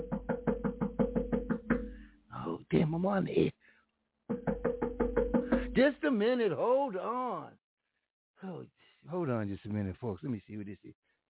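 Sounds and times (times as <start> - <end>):
knocking on a radio studio door: 0.0 - 2.0, 4.3 - 5.9
speech: 2.8 - 3.7, 5.8 - 7.6, 8.4 - 11.1.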